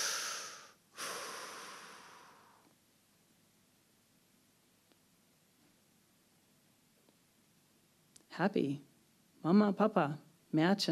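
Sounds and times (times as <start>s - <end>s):
person breathing in and out: 0.0s - 2.7s
speech: 8.3s - 10.8s.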